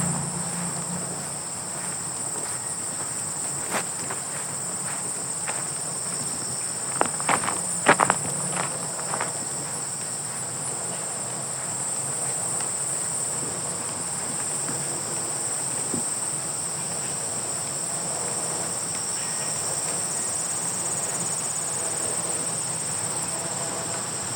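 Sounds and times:
grasshoppers buzzing high and continuous: 0:00.0 - 0:24.3
crisp crunching steps on gravel: 0:00.5 - 0:11.0.

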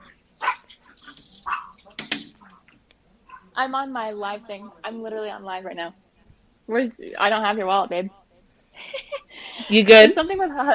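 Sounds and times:
dog barking: 0:00.0 - 0:02.6, 0:03.3 - 0:03.6
speech: 0:03.6 - 0:06.0, 0:06.7 - 0:08.2, 0:09.7 - 0:10.7.

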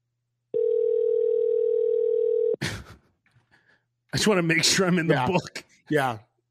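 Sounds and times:
steady phone tone: 0:00.5 - 0:02.6
speech: 0:04.1 - 0:06.3.

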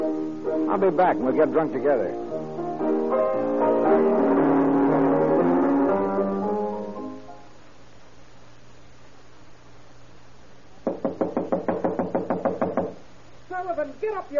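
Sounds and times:
music: 0:00.0 - 0:07.7
speech: 0:00.7 - 0:04.3, 0:14.1 - 0:14.3
heavy pounding on a door: 0:10.8 - 0:13.0.

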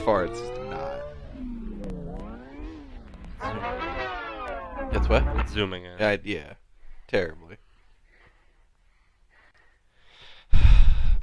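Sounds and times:
speech: 0:00.0 - 0:00.9, 0:04.9 - 0:07.5
rough heavy breathing: 0:08.0 - 0:11.2.

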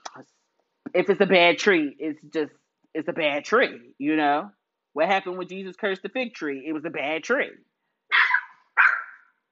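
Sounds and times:
speech: 0:00.2 - 0:07.7
puppy barking sharp and high: 0:08.1 - 0:09.4.

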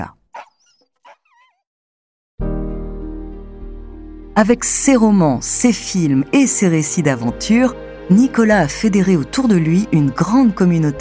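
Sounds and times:
sled dogs in northern Québec yipping and whining: 0:00.3 - 0:01.7
speech: 0:04.4 - 0:10.9.

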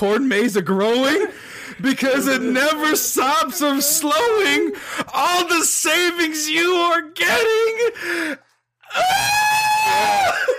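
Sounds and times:
speech: 0:00.0 - 0:10.5
laughter: 0:01.0 - 0:05.6
loud shrill scream sound effect: 0:08.8 - 0:10.5.

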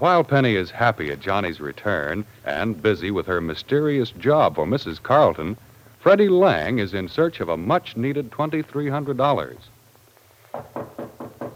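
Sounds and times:
speech: 0:00.0 - 0:09.7
knocking on a professor's wooden door: 0:10.5 - 0:11.5.

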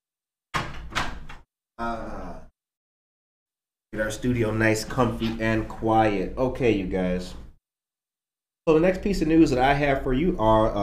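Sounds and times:
door scraping and creaking as it settles closed: 0:00.5 - 0:01.4, 0:04.8 - 0:05.8
heavy wooden door pushed shut: 0:00.5 - 0:01.4
speech: 0:01.8 - 0:02.2, 0:04.0 - 0:07.4, 0:08.7 - 0:10.8.

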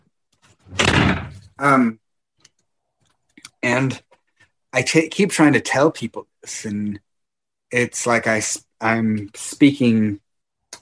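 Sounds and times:
door pushed shut with scraping swing and thud: 0:00.6 - 0:01.5
speech: 0:01.6 - 0:02.0, 0:03.6 - 0:04.1, 0:04.8 - 0:07.0, 0:07.7 - 0:10.2.

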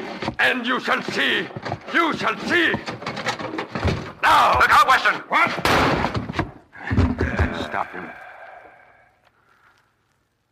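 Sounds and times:
rattling movement: 0:00.0 - 0:05.1
speech: 0:00.2 - 0:03.1, 0:04.2 - 0:06.1, 0:07.7 - 0:08.2
door flung open with a loud bang: 0:05.6 - 0:06.4.

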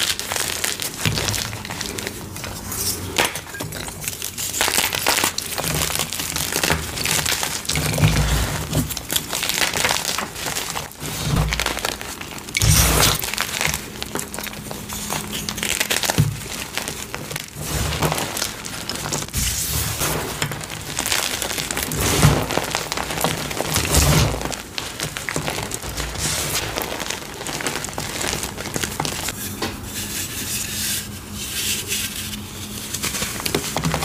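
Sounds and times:
gritty crinkling of crushed gym chalk: 0:00.0 - 0:30.4, 0:31.1 - 0:34.0
gym chalk being crushed: 0:03.9 - 0:34.0
sharper crunches of crushed gym chalk: 0:04.3 - 0:29.3.

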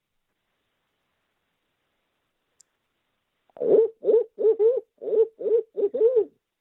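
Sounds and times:
man imitating owl hoots with his own voice: 0:03.6 - 0:06.4.

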